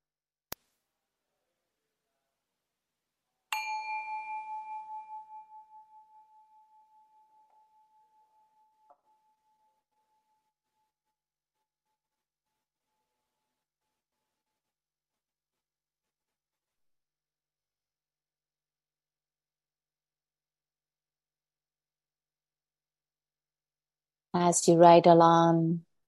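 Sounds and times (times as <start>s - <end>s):
meditation bell struck to begin group silent meditation: 3.5s - 10.6s
speech: 24.4s - 25.9s.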